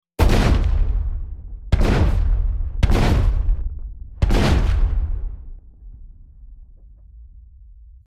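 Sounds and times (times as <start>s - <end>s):
shotgun blast: 0.2s - 5.7s.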